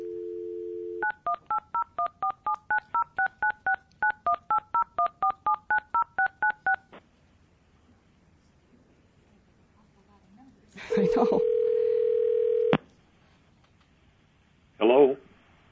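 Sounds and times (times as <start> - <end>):
phone dial tone: 0.0 - 6.8, 10.9 - 12.8
touch-tone keypad beeps as a phone call is placed: 1.0 - 6.8.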